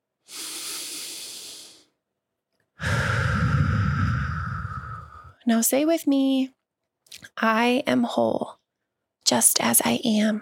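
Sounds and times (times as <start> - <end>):
slow deep breathing during guided breathing meditation: 0.2 - 1.9, 2.8 - 5.4
speech: 5.5 - 6.6, 7.2 - 8.6, 9.3 - 10.4.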